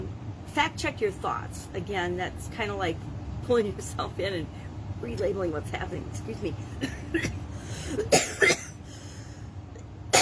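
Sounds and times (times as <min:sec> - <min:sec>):
speech: 0:00.5 - 0:08.5
person coughing sharply: 0:06.8 - 0:08.8.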